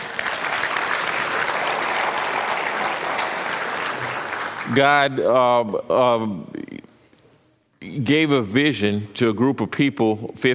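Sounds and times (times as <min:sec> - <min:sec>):
church audience clapping at a 50-year celebration: 0:00.0 - 0:05.2
speech: 0:04.7 - 0:06.6, 0:07.8 - 0:10.5.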